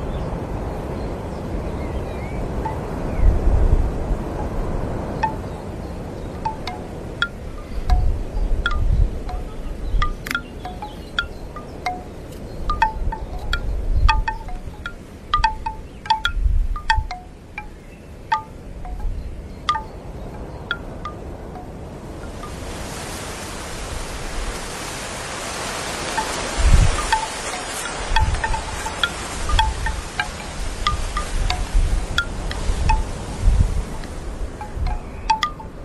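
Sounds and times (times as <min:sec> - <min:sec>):
low wind gusts buffeting the microphone: 0:00.0 - 0:35.8
bamboo wind chimes knocking in a light wind: 0:05.2 - 0:22.6, 0:26.1 - 0:35.8
steady airy hiss: 0:22.2 - 0:34.7.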